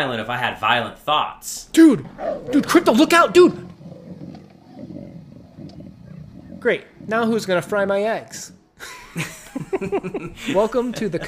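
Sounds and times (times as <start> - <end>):
speech: 0.0 - 3.7, 6.6 - 11.2
lion roaring: 2.0 - 8.2
laughter: 8.8 - 11.2.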